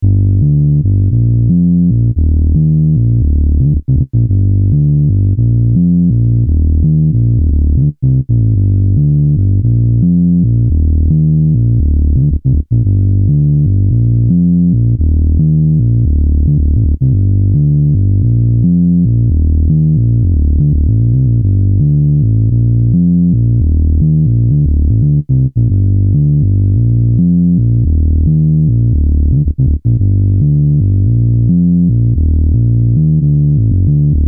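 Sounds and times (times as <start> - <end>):
synth bass loop in G minor at 112 BPM: 0.0 - 34.2.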